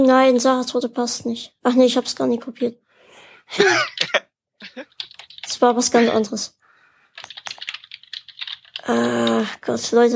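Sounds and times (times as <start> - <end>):
speech: 0.0 - 2.8, 3.5 - 4.2, 4.8 - 5.0, 5.6 - 6.6, 8.9 - 10.1
laughter: 3.6 - 4.8
typing on a computer keyboard: 4.9 - 5.6, 7.2 - 9.5.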